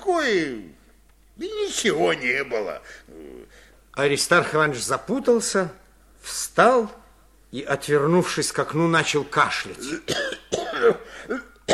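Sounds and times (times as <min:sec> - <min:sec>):
speech: 0:00.2 - 0:00.7, 0:01.4 - 0:03.3, 0:04.0 - 0:11.5
man with a cold coughing hoarsely: 0:09.8 - 0:11.7.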